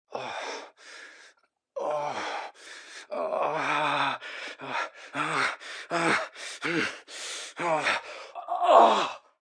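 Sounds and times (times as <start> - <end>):
man moaning heavily during sex: 1.8 - 7.0, 7.6 - 9.3.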